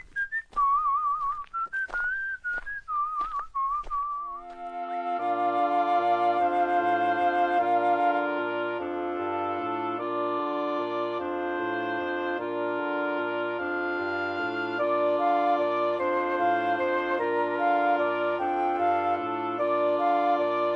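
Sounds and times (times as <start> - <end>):
person whistling a merry tune: 0.0 - 20.7
instrumental tune with a bouncing bass line: 4.5 - 20.7.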